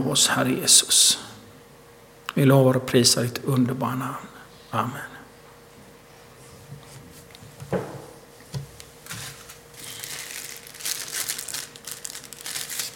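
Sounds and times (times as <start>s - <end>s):
speech: 0.0s - 1.3s, 2.3s - 5.2s
tissue paper being taken out, crinkling: 9.0s - 12.9s.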